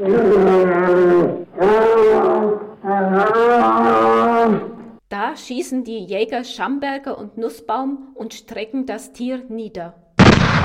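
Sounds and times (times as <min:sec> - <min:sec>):
speech: 0:00.0 - 0:00.6, 0:05.4 - 0:10.0
wounded bear roaring as it charges: 0:00.0 - 0:04.9.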